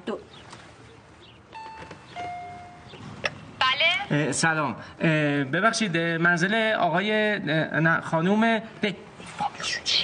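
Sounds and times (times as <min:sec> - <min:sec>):
hiss: 0:00.0 - 0:10.0
doorbell ringing at the entrance of a home: 0:01.6 - 0:03.0
speech: 0:04.1 - 0:10.0.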